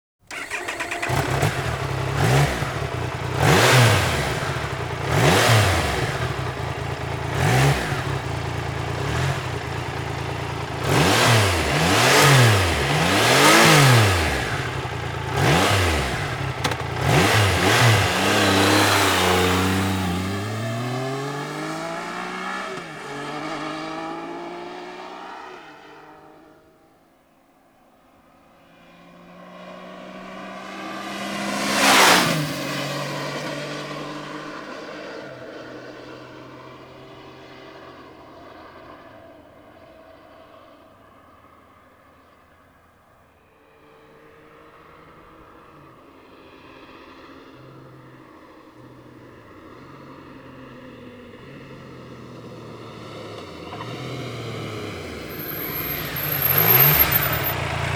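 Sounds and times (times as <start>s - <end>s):
Triumph Tiger motorcycle: 0.2s - 57.9s.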